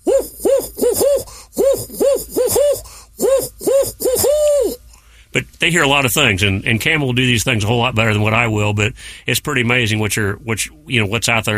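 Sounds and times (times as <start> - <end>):
voice imitating the hooting call of a barred owl: 0.0 - 4.9
speech: 5.6 - 11.5.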